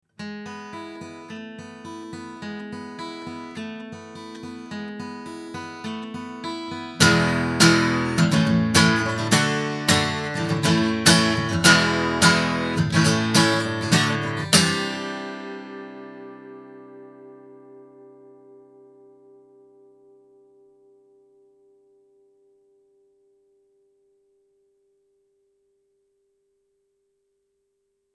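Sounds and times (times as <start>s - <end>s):
guitar recorded through a microphone: 0.1s - 24.4s.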